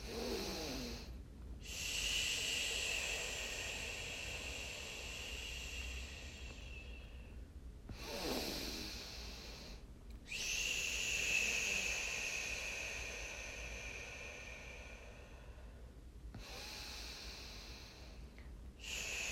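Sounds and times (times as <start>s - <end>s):
long exhale through the mouth during a breathing exercise: 0.0s - 19.2s
short breaths: 0.0s - 19.2s.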